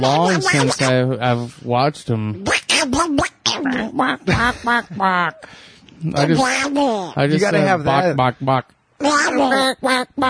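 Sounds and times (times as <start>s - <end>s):
person imitating a cartoon duck's voice with quacking gibberish: 0.0s - 1.0s, 2.4s - 5.5s, 6.2s - 7.2s, 9.1s - 10.2s
speech: 0.0s - 10.2s.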